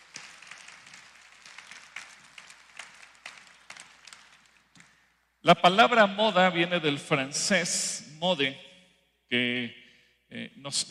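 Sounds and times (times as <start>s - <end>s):
audience applause: 0.0s - 5.1s
speech: 5.4s - 8.7s, 9.3s - 10.8s.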